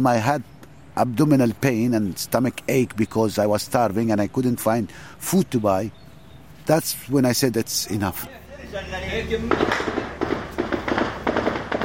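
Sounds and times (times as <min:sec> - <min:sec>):
speech: 0:00.0 - 0:06.0, 0:06.7 - 0:10.2
gunfire near an office: 0:09.4 - 0:11.8.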